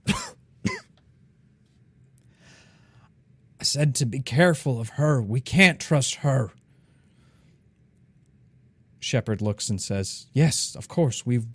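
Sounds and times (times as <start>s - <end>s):
person coughing: 0.0s - 0.9s
speech: 3.7s - 6.6s, 9.1s - 11.5s.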